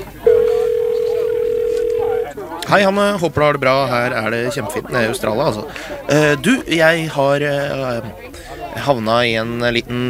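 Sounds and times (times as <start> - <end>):
telephone ringback tone while a call is being placed: 0.2 - 2.3
speech: 2.7 - 10.0.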